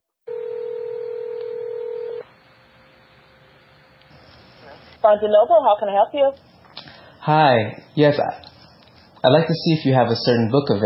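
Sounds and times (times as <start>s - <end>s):
electronic telephone tone: 0.3s - 2.3s
speech: 5.0s - 6.5s, 7.2s - 8.5s, 9.2s - 10.8s.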